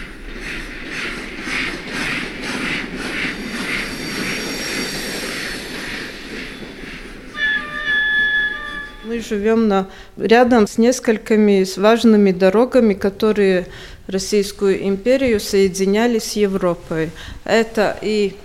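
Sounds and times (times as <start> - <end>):
steam locomotive chuffing at a period railway carriage exhibit: 0.0 - 10.2
loud shrill steam locomotive whistle: 7.3 - 9.4
speech: 9.2 - 18.4.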